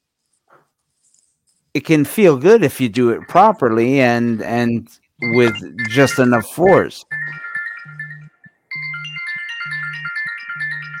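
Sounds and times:
speech: 1.8s - 7.2s
mobile phone ringtone with a bright electronic melody: 5.2s - 10.9s.

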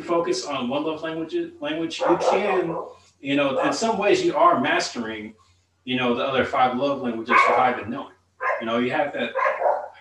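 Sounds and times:
speech: 0.1s - 9.6s
dog barking in the background: 2.0s - 4.0s, 7.3s - 9.9s.

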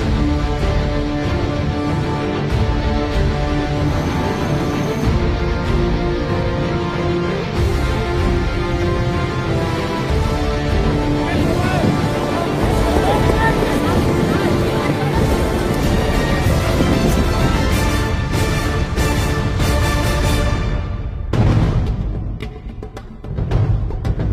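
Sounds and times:
wind: 0.0s - 24.3s
water noise: 3.3s - 19.6s
motorized rubber boat engines roaring during a navy raid exercise: 3.4s - 18.3s.

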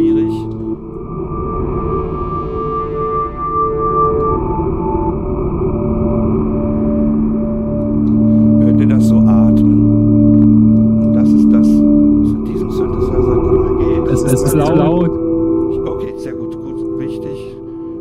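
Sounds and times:
wavetable synthesizer drone with breathy noise: 0.0s - 17.9s.

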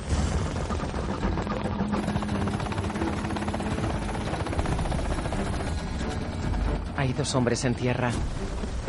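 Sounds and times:
helicopter rotor thumping during descent: 0.0s - 8.8s
speech: 7.0s - 8.4s.

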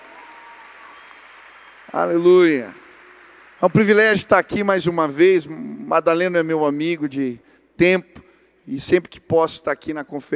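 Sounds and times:
audience applauding: 0.0s - 4.4s
speech: 1.9s - 2.8s, 3.6s - 10.3s.

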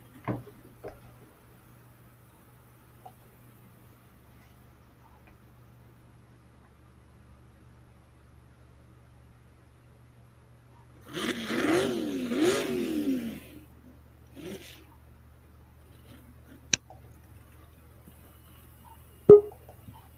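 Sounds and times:
racing tractor engine revving: 11.1s - 13.7s.

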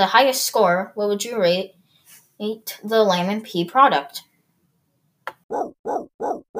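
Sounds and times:
speech: 0.0s - 1.8s, 2.4s - 4.3s, 5.5s - 6.5s
dog barking: 5.5s - 6.5s.

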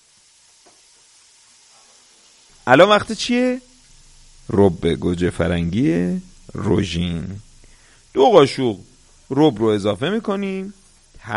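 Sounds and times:
onion and meat frying in a pan with olive oil: 0.0s - 11.3s
speech: 2.6s - 3.7s, 4.5s - 7.5s, 8.2s - 11.3s.

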